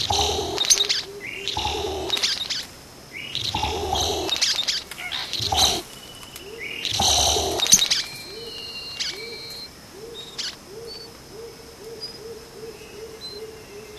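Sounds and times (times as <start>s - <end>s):
Vogelkop bowerbird giving loud harsh rasping bursts: 0.0s - 6.0s, 6.8s - 8.1s
series of short soft lower hoots: 0.0s - 13.9s.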